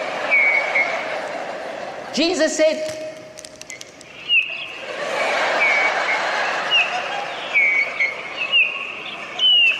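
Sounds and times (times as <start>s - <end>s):
laughter: 0.0s - 2.4s, 4.6s - 9.7s
birds chirping and singing outdoors: 0.3s - 1.0s, 3.7s - 4.8s, 5.5s - 9.7s
speech: 2.2s - 3.0s.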